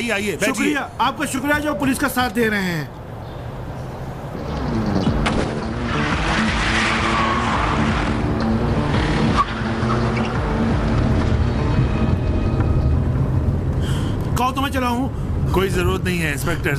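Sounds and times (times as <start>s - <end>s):
speech: 0.0s - 3.0s, 14.5s - 16.7s
car engine roaring at speed: 4.2s - 14.4s
high tire squeal: 4.6s - 13.0s.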